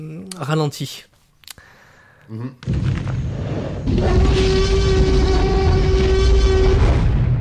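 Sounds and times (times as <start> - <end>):
speech: 0.0 - 1.1, 2.3 - 3.0, 3.9 - 4.7
T-Rex roar from Jack Russell terrier and slowed-down baby elephant: 3.3 - 7.3.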